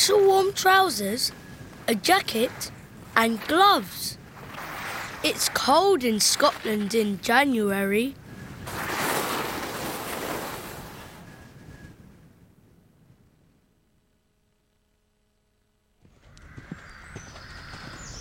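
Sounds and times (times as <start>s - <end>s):
speech: 0.0s - 4.2s, 5.2s - 8.8s
steady gusty wind: 0.0s - 13.6s, 16.1s - 18.1s
horse hooves clip-clopping while riding outdoors: 16.0s - 18.1s.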